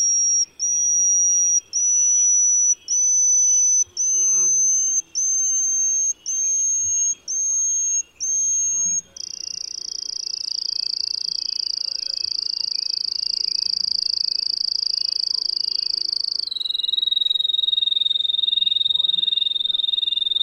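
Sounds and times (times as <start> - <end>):
yellowish-bellied bush warbler singing thin high whistles: 0.0 - 20.4.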